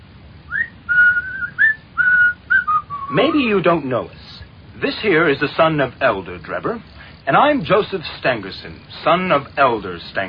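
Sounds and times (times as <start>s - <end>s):
faint low hum: 0.0s - 10.2s
young man whistling a short tune: 0.5s - 3.2s
speech: 3.1s - 4.2s, 4.8s - 10.2s.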